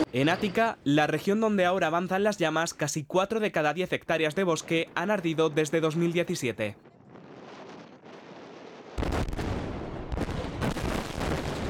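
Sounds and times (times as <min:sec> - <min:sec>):
speech: 0:00.1 - 0:06.9
controlled explosion blast in a river: 0:06.8 - 0:11.6.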